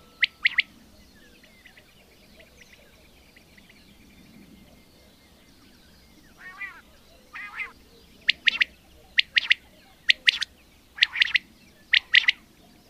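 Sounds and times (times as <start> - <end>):
common quail giving rapid three-note phrases: 0.0 - 0.8, 6.4 - 12.8.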